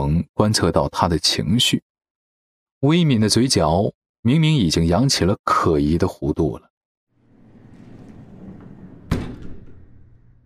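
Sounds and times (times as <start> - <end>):
speech: 0.0 - 1.9, 2.8 - 6.7
elevator door closing with a sharp thud: 7.2 - 10.4.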